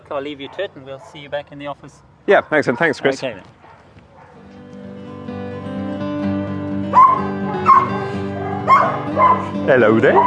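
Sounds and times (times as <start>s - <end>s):
speech: 0.1s - 3.6s, 6.9s - 7.4s, 9.2s - 10.2s
dogs barking and yipping: 0.4s - 1.3s, 2.0s - 4.5s, 6.9s - 10.2s
sharp high-pitched dog yelps: 6.9s - 9.5s.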